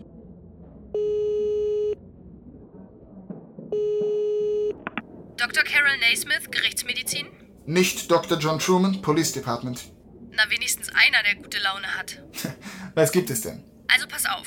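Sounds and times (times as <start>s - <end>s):
long steady telephone ringback tones: 1.0s - 2.0s, 3.8s - 4.8s
speech: 5.8s - 10.0s, 11.0s - 12.3s, 13.0s - 14.4s.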